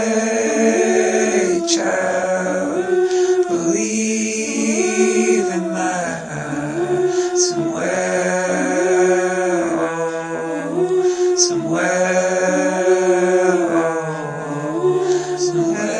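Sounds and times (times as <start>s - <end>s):
vocals: 0.0s - 15.9s.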